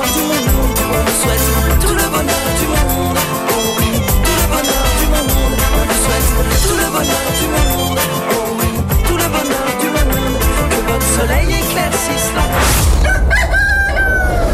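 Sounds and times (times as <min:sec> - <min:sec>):
dense busy music: 0:00.0 - 0:13.1
rooster crowing: 0:12.9 - 0:14.5.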